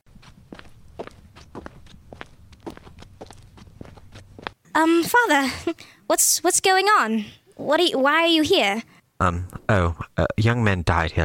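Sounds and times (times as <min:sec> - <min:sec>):
footsteps of a woman walking up to a priest: 0:00.0 - 0:05.2
speech: 0:04.8 - 0:11.2.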